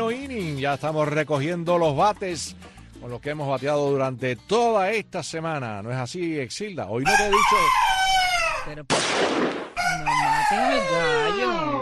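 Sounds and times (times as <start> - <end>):
speech: 0.1 - 8.0, 8.7 - 11.8
rooster crowing: 7.1 - 8.7, 9.8 - 11.8.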